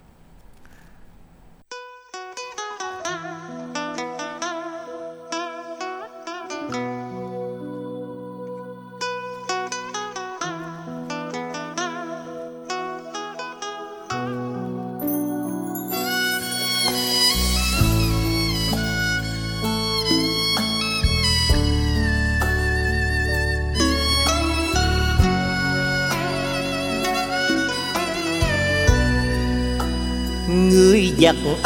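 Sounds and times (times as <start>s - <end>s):
instrumental song introduction: 1.8s - 31.6s.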